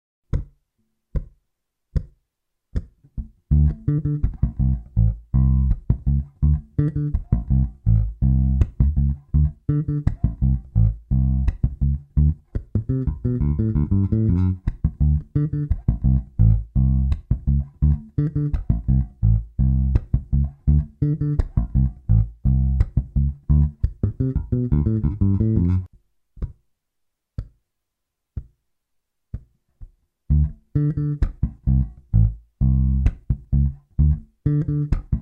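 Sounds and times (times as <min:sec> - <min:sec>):
slap bass exercise on bass guitar: 0:02.8 - 0:25.9, 0:30.3 - 0:35.2.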